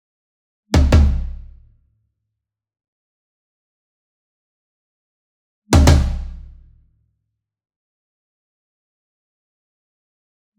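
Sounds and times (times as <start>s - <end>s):
single concert tom drum hit with double hard beater near: 0.8s - 1.3s, 5.8s - 6.4s.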